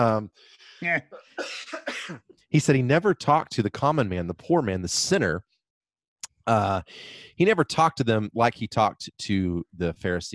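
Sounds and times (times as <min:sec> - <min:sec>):
speech: 0:00.0 - 0:05.5, 0:06.4 - 0:10.3
rough throaty bursts and breaths: 0:00.3 - 0:01.4, 0:06.8 - 0:07.4
person coughing: 0:00.8 - 0:02.3.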